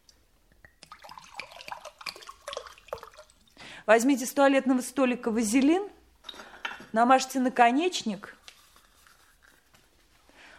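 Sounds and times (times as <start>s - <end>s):
water pouring from a carafe into a filling vessel: 0.8s - 3.6s
speech: 3.9s - 6.0s, 6.9s - 8.4s.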